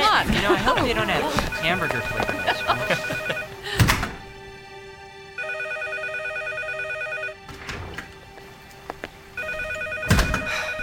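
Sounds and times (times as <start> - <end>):
laughter: 0.0 - 3.8
speech: 0.8 - 3.4
telephone ringing: 1.5 - 3.6, 5.4 - 7.4, 9.4 - 10.8.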